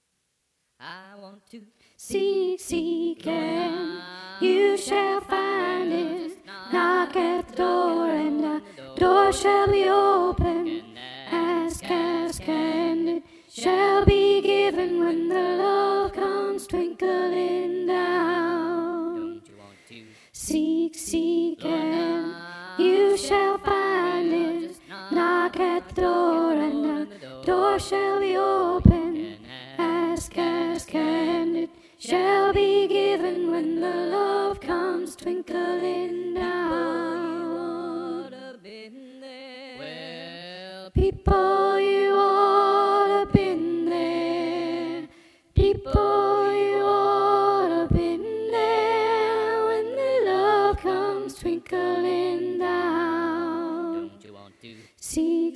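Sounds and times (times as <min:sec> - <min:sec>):
soprano singing: 0:00.9 - 0:19.7, 0:20.4 - 0:39.9, 0:41.0 - 0:54.3.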